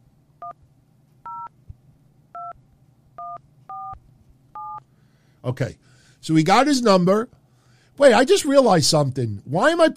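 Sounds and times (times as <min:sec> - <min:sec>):
low hum: 0:00.0 - 0:09.9
telephone keypad two-tone dialing beeps: 0:01.3 - 0:01.5, 0:03.2 - 0:04.0, 0:04.6 - 0:04.8
speech: 0:05.4 - 0:07.4, 0:08.0 - 0:09.9.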